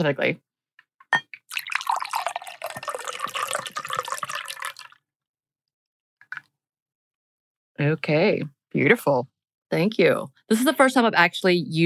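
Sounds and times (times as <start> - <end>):
speech: 0.0 - 0.5, 7.8 - 11.8
glass clink or drip: 1.1 - 1.3
cocktail poured into a glass: 1.2 - 5.0.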